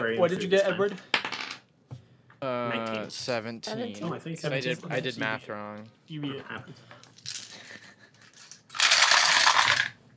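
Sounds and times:
speech: 0.1s - 1.2s, 2.4s - 7.1s
dice clattering as they are gathered up: 7.0s - 7.6s, 8.2s - 10.0s.

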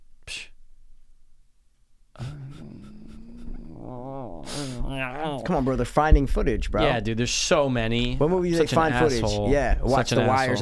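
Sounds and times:
dog snort-like burst: 2.2s - 6.0s
dog whining and yowling: 2.3s - 5.7s
speech: 5.0s - 10.6s.

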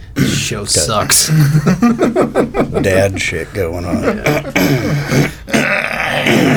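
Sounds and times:
laughter: 0.3s - 6.5s
speech: 0.4s - 5.4s
loud gravelly burp: 4.3s - 6.5s.

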